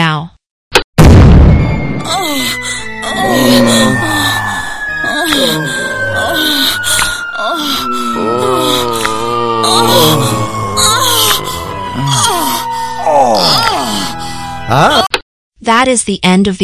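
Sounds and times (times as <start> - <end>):
loud boom of a person being shot out of a cannon: 1.0 - 2.0
person groaning and wailing: 2.0 - 15.1
speech: 15.8 - 16.6.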